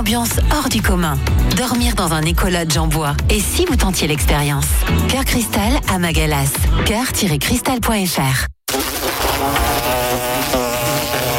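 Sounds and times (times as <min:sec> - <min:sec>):
speech: 0:00.0 - 0:09.6
wasps or hornets buzzing: 0:08.7 - 0:11.3.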